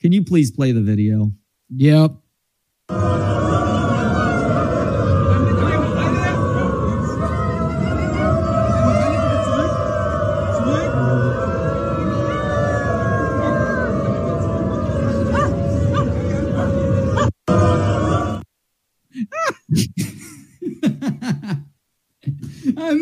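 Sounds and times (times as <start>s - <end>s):
speech: 0.0s - 2.2s, 2.9s - 3.4s
large crowd of people howling and barking at a railroad station: 2.9s - 18.4s
laughter: 19.2s - 21.7s.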